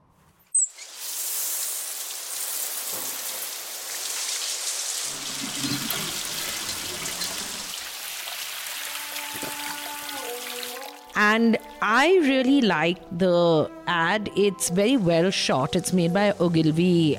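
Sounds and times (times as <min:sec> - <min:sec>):
shower spraying water in a shower booth in a village in Rajasthan: 0:00.6 - 0:11.1
speech: 0:11.2 - 0:17.1.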